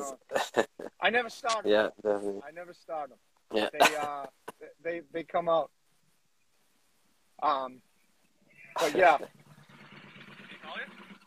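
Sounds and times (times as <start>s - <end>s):
speech: 0.1s - 5.8s, 7.4s - 7.9s, 8.8s - 9.4s
motorcycle engine rumbling by: 8.5s - 11.2s.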